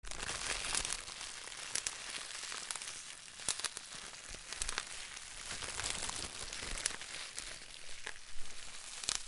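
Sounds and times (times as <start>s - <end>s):
fire: 0.0s - 9.2s.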